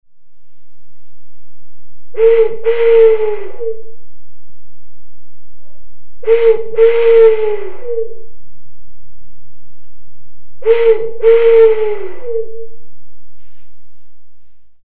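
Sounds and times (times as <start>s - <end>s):
owl whistle: 2.1s - 4.0s, 6.2s - 8.3s, 10.6s - 12.8s.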